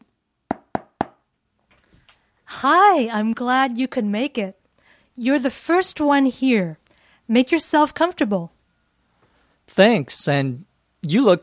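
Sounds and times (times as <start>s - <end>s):
knocking on a front door: 0.5s - 1.2s
speech: 2.5s - 4.6s, 5.2s - 8.6s, 9.7s - 11.4s.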